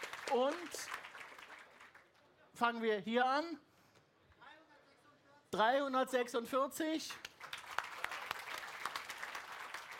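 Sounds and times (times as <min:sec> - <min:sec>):
audience applause: 0:00.0 - 0:02.1, 0:07.2 - 0:09.9
speech: 0:00.3 - 0:00.9, 0:02.6 - 0:03.7, 0:05.5 - 0:07.3.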